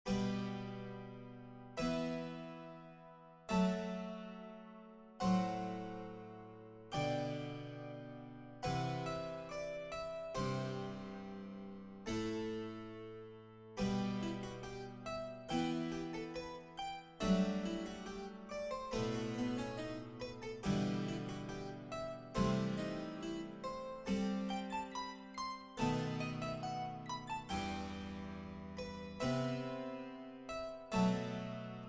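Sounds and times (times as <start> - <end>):
solo harpsichord chaconne and fantasia: 0.1 - 31.8.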